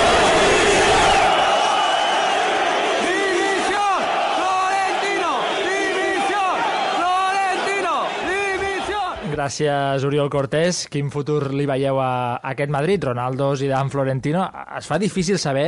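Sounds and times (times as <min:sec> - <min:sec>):
large football stadium crowd shouting and chanting in unison: 0:00.0 - 0:09.4
speech: 0:09.4 - 0:15.6.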